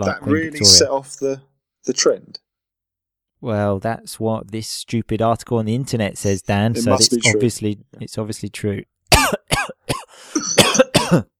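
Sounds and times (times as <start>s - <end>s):
speech: 0.0s - 2.4s, 3.4s - 9.6s, 11.1s - 11.3s
person coughing harshly: 9.1s - 11.3s.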